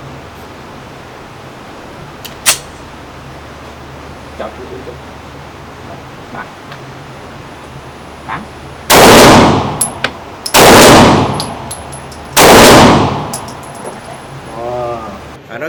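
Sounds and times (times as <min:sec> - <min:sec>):
pistol shots at a shooting range: 0:08.9 - 0:13.6.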